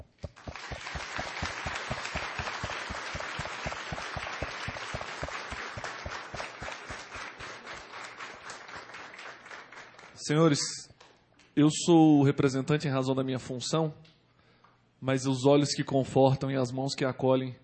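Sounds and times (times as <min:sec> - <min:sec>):
large audience applauding in a plenary hall: 0:00.0 - 0:10.2
speech: 0:10.3 - 0:10.8, 0:11.6 - 0:14.1, 0:15.0 - 0:17.6.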